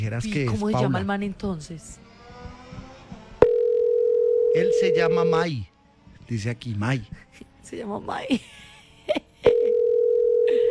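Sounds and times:
speech: 0.0s - 2.1s, 4.5s - 5.7s, 6.3s - 9.2s
telephone ringback tone on an unanswered call: 3.4s - 5.3s, 9.5s - 10.6s.

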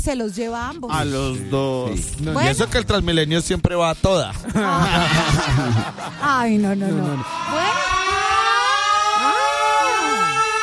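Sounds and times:
speech: 0.0s - 8.0s
laughter: 4.3s - 9.4s
ambulance siren wailing: 6.9s - 10.6s.

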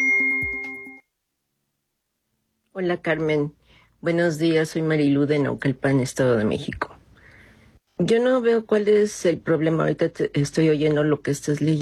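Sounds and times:
voicemail tone electronic beep: 0.0s - 1.1s
speech: 2.8s - 6.9s, 8.0s - 11.8s.

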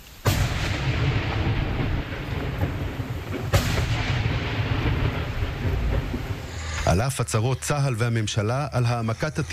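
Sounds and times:
gunshots fired at explosive drones: 0.2s - 6.9s
long heavy rumbling echo of gunshots: 0.2s - 9.5s
speech: 7.0s - 9.5s.

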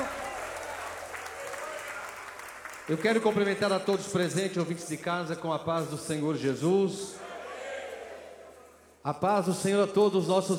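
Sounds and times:
church congregation applauding during a worship service: 0.0s - 5.1s
speech: 2.9s - 7.3s, 9.0s - 10.5s.

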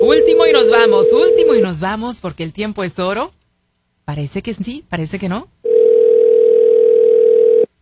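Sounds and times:
telephone ring tone heard down the line: 0.0s - 1.7s, 5.6s - 7.7s
speech: 1.1s - 3.4s, 4.1s - 5.6s.

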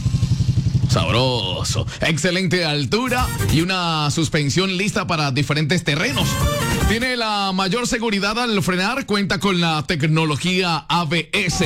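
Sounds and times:
adventure-style motorcycle engine running with a steady rhythmic low throb: 0.0s - 1.8s
speech: 1.0s - 11.6s.

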